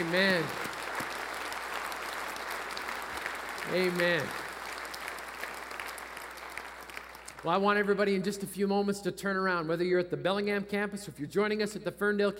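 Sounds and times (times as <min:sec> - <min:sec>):
speech: 0:00.0 - 0:00.7, 0:03.7 - 0:04.4, 0:07.4 - 0:12.3
large audience in a church applauding: 0:00.0 - 0:07.6.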